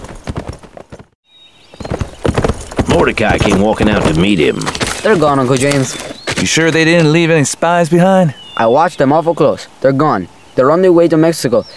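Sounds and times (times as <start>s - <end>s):
hooves of a ridden horse clopping: 0.0s - 7.5s
speech: 2.9s - 11.7s.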